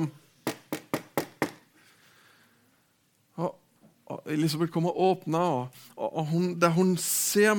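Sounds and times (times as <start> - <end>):
speech: 0.0 - 0.2, 3.4 - 7.5
knocking on a door: 0.5 - 1.6.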